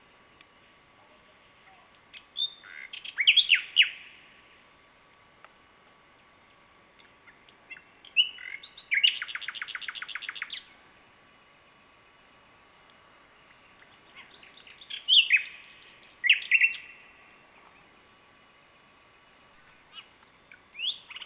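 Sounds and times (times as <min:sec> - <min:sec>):
common nightingale Luscinia megarhynchos singing: 0:01.6 - 0:04.3, 0:07.0 - 0:10.8, 0:13.3 - 0:18.1, 0:19.3 - 0:21.2.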